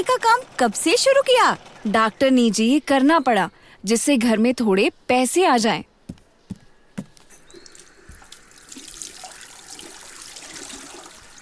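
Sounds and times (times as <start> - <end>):
speech: 0.0 - 5.9
water splashing: 7.6 - 11.4
water running from a tap over hands being rinsed: 8.2 - 11.4.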